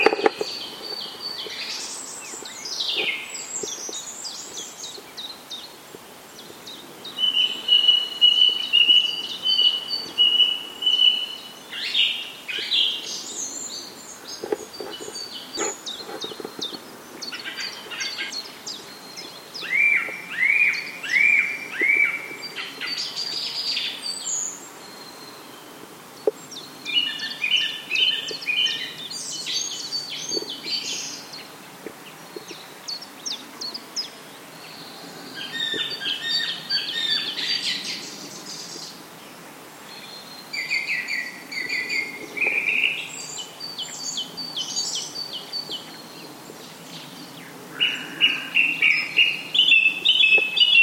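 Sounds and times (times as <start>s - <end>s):
song thrush: 0.0s - 50.8s.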